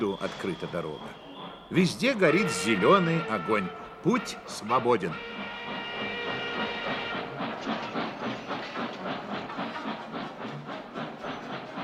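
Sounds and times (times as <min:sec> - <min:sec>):
speech: 0:00.0 - 0:05.6
long heavy train running on rails: 0:00.0 - 0:11.8
wheels clickety-clacking over rail joints: 0:05.8 - 0:11.8.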